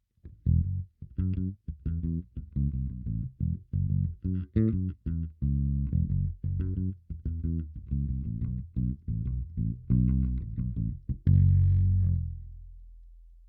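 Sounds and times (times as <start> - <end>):
clean bass: 0.0 - 13.4.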